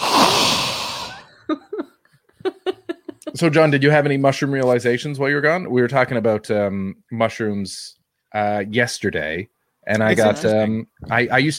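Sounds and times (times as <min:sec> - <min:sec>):
loud breath blown into a microphone: 0:00.0 - 0:01.3
short quiet vocal bursts like soft chuckles: 0:01.4 - 0:03.4
speech: 0:01.5 - 0:01.7, 0:03.4 - 0:11.5.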